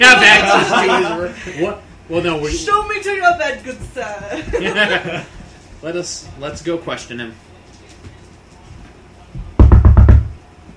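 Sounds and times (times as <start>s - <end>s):
laughter: 0.0s - 1.9s, 4.2s - 5.7s
speech: 0.0s - 7.5s
loud knocks rapping on a hollow surface: 9.4s - 10.4s.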